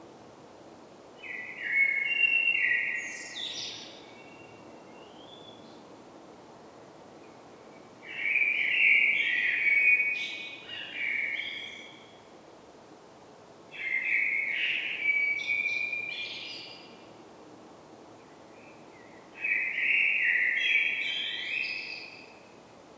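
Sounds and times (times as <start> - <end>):
common blackbird song, Turdus merula: 1.2 - 5.9, 7.2 - 12.3, 13.8 - 17.1, 18.2 - 22.5.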